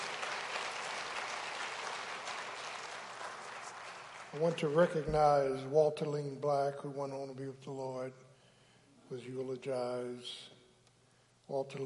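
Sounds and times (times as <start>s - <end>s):
congregation applauding the choir: 0.0s - 5.6s
speech: 4.3s - 8.2s, 9.1s - 10.6s, 11.5s - 11.8s.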